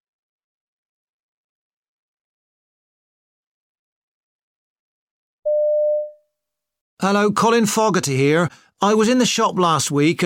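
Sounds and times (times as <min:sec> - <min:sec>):
electronic telephone ringing tone on a call to a sports shop: 0:05.5 - 0:06.2
speech: 0:07.0 - 0:10.2.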